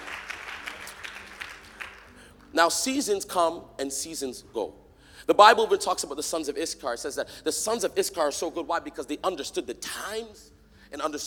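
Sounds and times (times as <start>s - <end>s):
audience applauding: 0.0s - 2.2s
speech: 2.6s - 11.2s.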